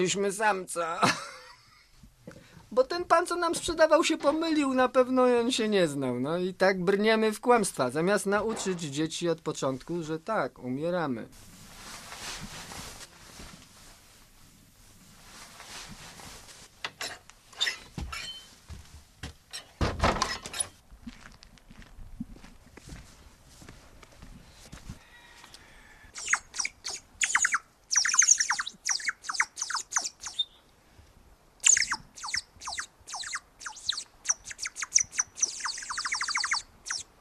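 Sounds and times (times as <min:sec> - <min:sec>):
speech: 0:00.0 - 0:01.4, 0:02.3 - 0:11.5
handmade ceramic water bird whistle warbling: 0:26.2 - 0:30.6, 0:31.6 - 0:37.1.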